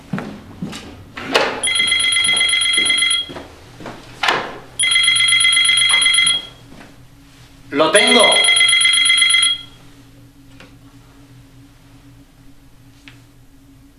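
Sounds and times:
telephone bell ringing: 0:01.6 - 0:03.4, 0:04.8 - 0:06.6, 0:08.0 - 0:09.8
speech: 0:07.9 - 0:08.4.

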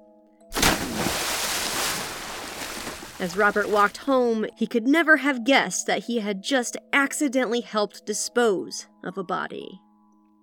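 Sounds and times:
heavy box splashing into river: 0:00.5 - 0:04.0
speech: 0:03.2 - 0:09.8.

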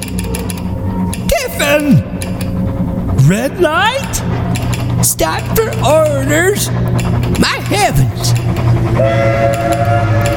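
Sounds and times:
steam train chugging: 0:00.0 - 0:10.3
speech: 0:01.6 - 0:02.1, 0:03.3 - 0:10.3
sustained steam train whistle: 0:08.9 - 0:10.3.

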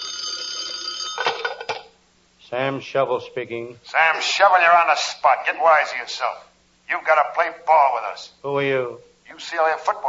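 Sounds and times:
old-fashioned telephone bell ringing: 0:00.0 - 0:01.9
speech: 0:02.5 - 0:10.0.

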